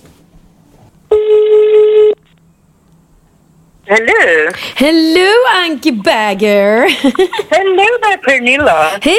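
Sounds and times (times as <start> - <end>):
faint hum: 0.0 - 9.1
outgoing phone ringing tone electronic beep: 1.1 - 2.2
speech: 3.9 - 9.1.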